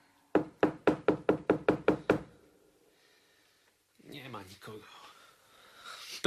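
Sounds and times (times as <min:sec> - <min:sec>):
firm knocking on a door: 0:00.4 - 0:02.3
speech: 0:04.4 - 0:05.1.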